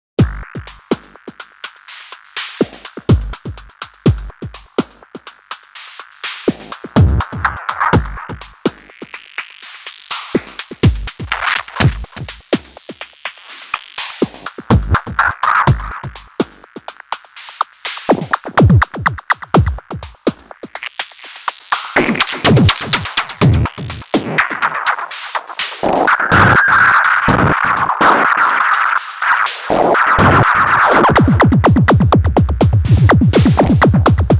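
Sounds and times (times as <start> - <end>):
distorted drum sequence: 0.2 - 34.3.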